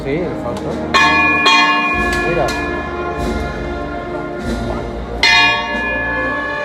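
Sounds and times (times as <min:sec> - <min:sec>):
low murmur of an outdoor crowd at a religious procession: 0:00.0 - 0:06.6
bell ringing to halt a religious procession: 0:01.0 - 0:03.3, 0:05.2 - 0:06.6.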